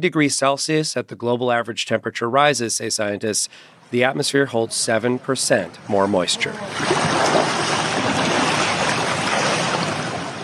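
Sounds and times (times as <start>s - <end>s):
speech: 0.0s - 7.8s
floodwater rushing through city streets in Opole Poland: 4.7s - 10.4s.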